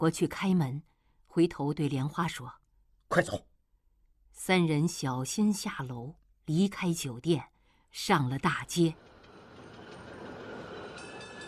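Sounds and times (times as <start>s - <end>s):
speech: 0.0s - 3.5s, 4.4s - 9.1s
electric tram rolling on a city street: 8.4s - 11.4s.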